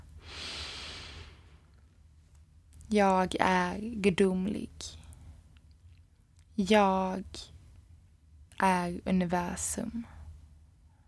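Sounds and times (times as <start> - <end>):
slow airy inhalation: 0.2 - 1.6
speech: 2.9 - 5.0, 6.6 - 7.5, 8.6 - 10.1.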